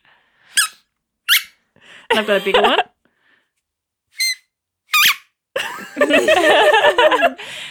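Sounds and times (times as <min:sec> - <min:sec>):
whippet puppy squeezing a squeaky toy: 0:00.5 - 0:01.6, 0:02.2 - 0:02.7, 0:04.2 - 0:05.3
speech: 0:01.8 - 0:02.9
laughter: 0:02.1 - 0:02.9, 0:05.6 - 0:07.6.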